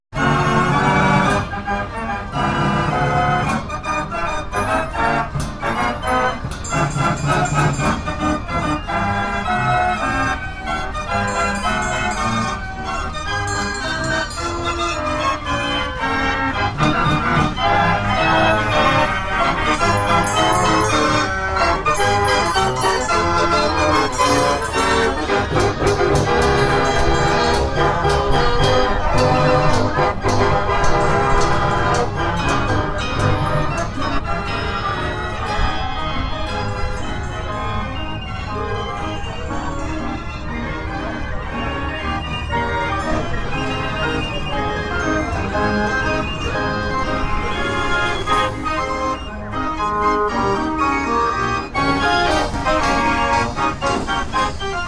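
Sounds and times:
carnival sounds: 0.2s - 54.8s.

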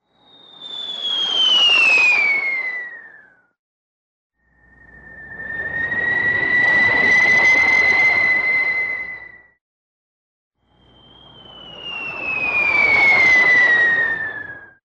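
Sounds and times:
whistle of a falling rocket: 0.0s - 3.6s, 4.4s - 9.6s, 10.6s - 14.8s.

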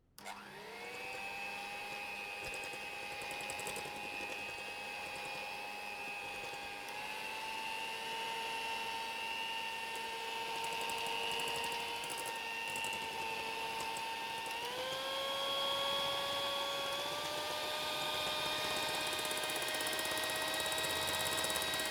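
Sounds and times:
kitchen mixer running: 0.2s - 21.8s.

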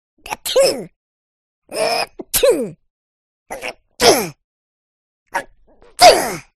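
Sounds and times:
cartoon sneeze: 0.3s - 1.0s, 1.7s - 2.8s, 3.5s - 4.4s, 5.4s - 6.5s.

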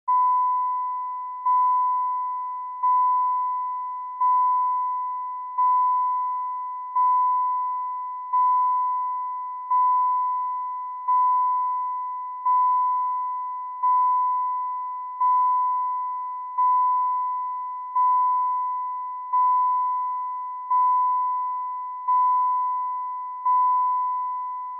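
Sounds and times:
car unfastened seatbelt warning signal: 0.1s - 24.7s.

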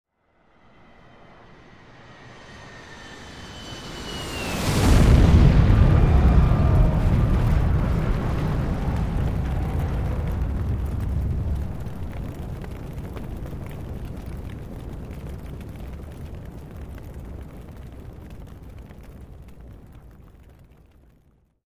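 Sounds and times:
passenger plane crash: 0.5s - 17.7s.

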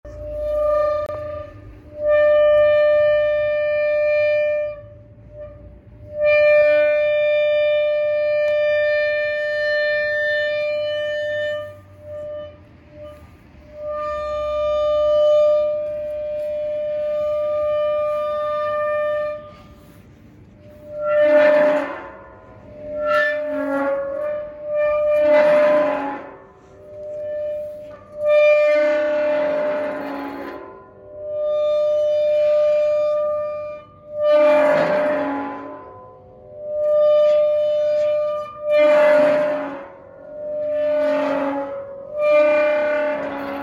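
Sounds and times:
metal creaking: 0.1s - 43.6s.

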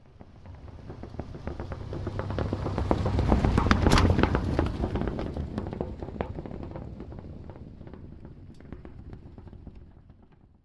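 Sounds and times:
car driving on a punctured flat tire: 0.0s - 10.6s.

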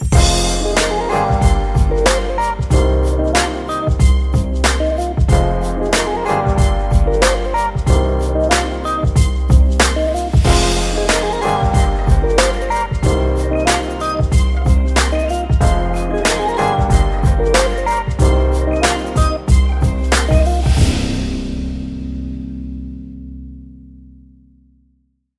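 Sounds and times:
musical jingle: 0.2s - 4.5s, 5.3s - 22.9s.

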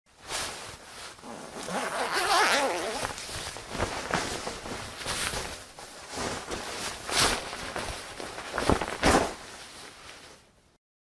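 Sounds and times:
jacket, trousers and clothes rustling on hangers in a wardrobe: 0.2s - 10.6s
jacket being unfastened: 1.1s - 5.7s, 6.3s - 10.3s.

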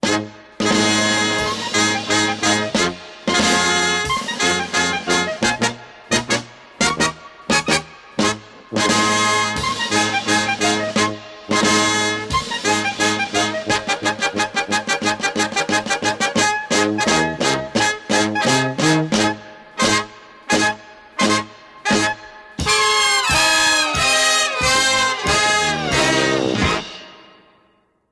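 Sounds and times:
circus music: 0.0s - 27.5s.

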